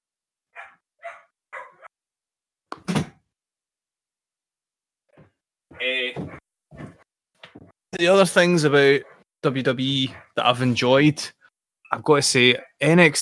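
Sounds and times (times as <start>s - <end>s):
newly arrived dog barking in a house: 0.5s - 1.9s, 9.0s - 9.2s, 10.1s - 10.4s
speech: 8.0s - 13.2s.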